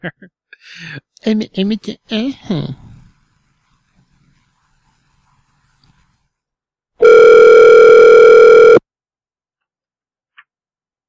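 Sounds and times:
speech: 0.0s - 2.8s
telephone dial tone after a hang-up: 7.0s - 8.8s.

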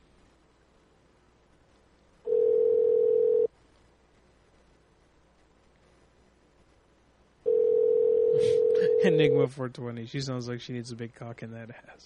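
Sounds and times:
faint hiss: 0.0s - 12.0s
telephone dial tone before a call is placed: 2.3s - 3.5s, 7.5s - 9.0s
speech: 9.0s - 12.0s.

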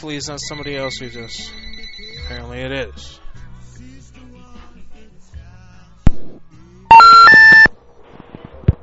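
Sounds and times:
speech: 0.0s - 1.7s, 2.3s - 3.2s
electronic telephone ring on a call-in line: 0.4s - 2.5s, 6.9s - 7.7s.

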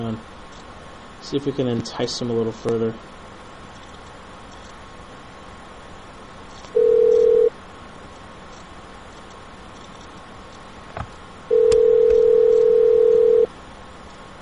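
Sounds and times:
speech: 0.1s - 0.4s, 1.2s - 3.2s
phone line ringback tone through the earpiece: 6.8s - 7.5s, 11.5s - 13.5s.

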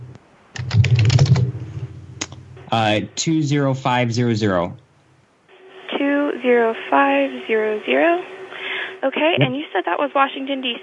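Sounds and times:
typing on a computer keyboard: 0.6s - 1.5s
speech: 2.7s - 4.8s, 6.4s - 8.3s, 9.0s - 10.8s
voice-like sound: 9.3s - 9.6s.

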